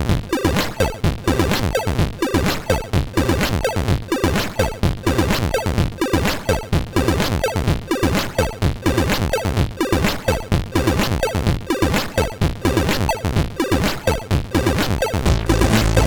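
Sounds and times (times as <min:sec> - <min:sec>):
SID chip hymn: 0:00.1 - 0:16.0.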